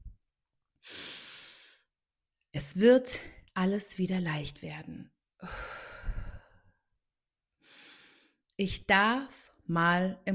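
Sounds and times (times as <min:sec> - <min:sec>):
deep breath in and out: 0:00.8 - 0:01.9, 0:05.4 - 0:06.7, 0:07.6 - 0:08.4
speech: 0:02.8 - 0:05.8, 0:08.6 - 0:10.3.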